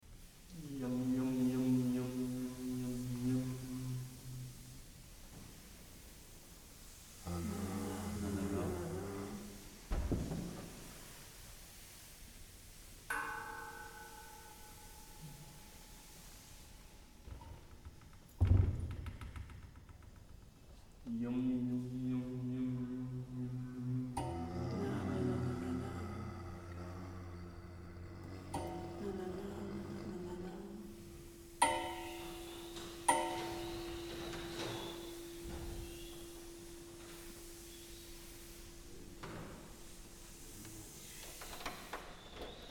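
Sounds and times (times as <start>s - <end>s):
background noise: 0.0s - 42.6s.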